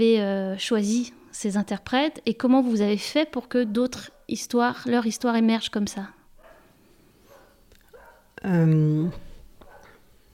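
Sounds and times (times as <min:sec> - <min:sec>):
speech: 0:00.0 - 0:06.2, 0:08.4 - 0:09.2
neighbor's dog barking in short sharp yips: 0:06.4 - 0:06.7, 0:07.3 - 0:08.3, 0:09.6 - 0:10.0.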